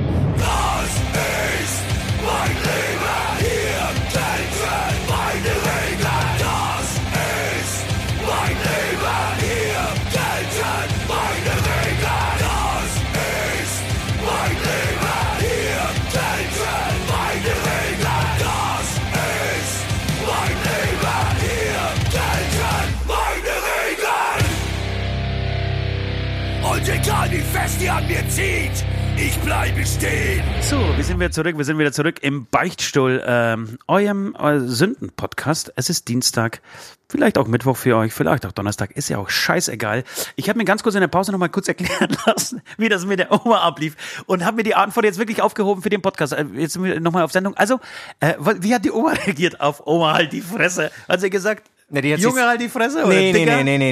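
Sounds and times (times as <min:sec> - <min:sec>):
harsh shouted metal vocals: 0:00.0 - 0:25.3, 0:26.3 - 0:31.4, 0:52.2 - 0:53.8
distorted metal guitars: 0:00.0 - 0:31.4
driving metal drums: 0:00.0 - 0:31.4
speech: 0:29.5 - 0:53.8
laughter: 0:41.8 - 0:43.5, 0:49.1 - 0:49.5, 0:50.1 - 0:50.9, 0:53.0 - 0:53.8.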